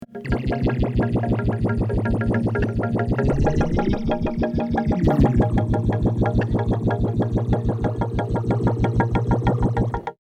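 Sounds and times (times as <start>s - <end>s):
water: 0.2s - 10.1s
voice: 3.2s - 5.6s.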